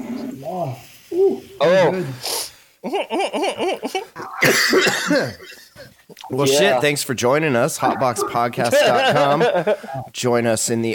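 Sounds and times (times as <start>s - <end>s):
speech: 0.4s - 10.9s
laughter: 2.8s - 6.0s, 7.7s - 10.1s
person coughing: 4.2s - 5.5s.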